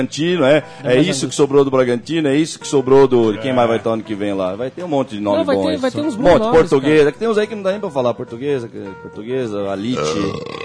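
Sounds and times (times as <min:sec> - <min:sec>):
speech: 0:00.0 - 0:10.6
loud drawn-out burp: 0:09.9 - 0:10.6.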